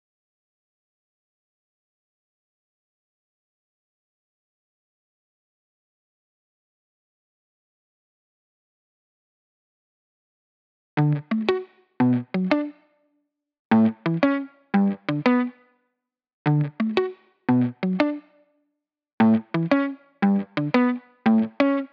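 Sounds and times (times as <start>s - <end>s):
175 BPM guitar arpeggios in D major: 11.0s - 12.8s, 13.7s - 15.6s, 16.5s - 18.4s, 19.2s - 21.9s.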